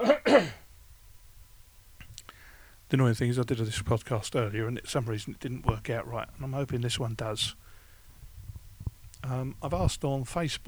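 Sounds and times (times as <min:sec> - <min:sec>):
person coughing: 0:00.0 - 0:00.6
speech: 0:02.9 - 0:07.6, 0:09.2 - 0:10.6.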